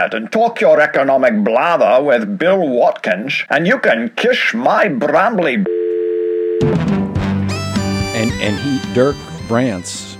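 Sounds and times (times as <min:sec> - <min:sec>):
speech: 0:00.0 - 0:05.8, 0:06.6 - 0:07.0, 0:08.3 - 0:10.1
telephone dial tone after a hang-up: 0:05.7 - 0:06.7.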